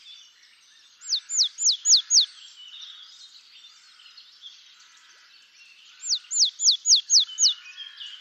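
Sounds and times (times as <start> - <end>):
soft bird twittering: 0.0 - 8.1
willow tit downslurred whistles: 1.0 - 2.3, 6.0 - 7.6.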